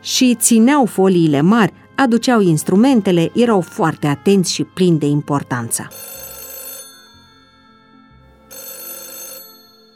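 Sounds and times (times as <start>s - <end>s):
speech: 0.0s - 6.2s
telephone ringing with a buzzing bell tone: 5.6s - 9.9s.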